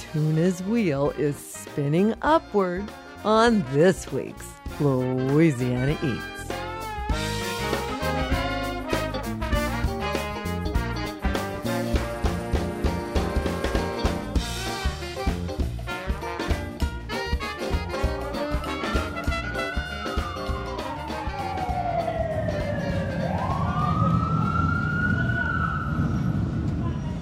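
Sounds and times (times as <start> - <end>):
dense blare of music-like sound: 0.0 - 24.5
speech: 0.1 - 6.3
siren wailing up and down: 19.4 - 26.6
steady rumble of traffic on a busy city street: 21.7 - 27.2.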